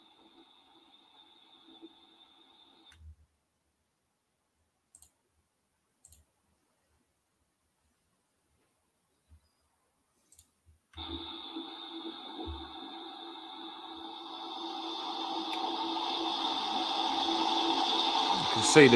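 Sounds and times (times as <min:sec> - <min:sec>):
soft clicks: 0:04.9 - 0:05.2, 0:06.0 - 0:06.3, 0:10.2 - 0:11.0
loud running water gushing out: 0:11.0 - 0:18.9
speech: 0:18.6 - 0:18.9.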